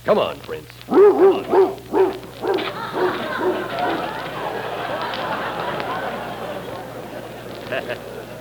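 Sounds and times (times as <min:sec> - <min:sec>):
speech: 0:00.0 - 0:01.7
outdoor noise: 0:00.0 - 0:08.3
dog barking and yipping: 0:00.9 - 0:04.3
voices: 0:01.1 - 0:08.3
laughter: 0:01.3 - 0:08.3.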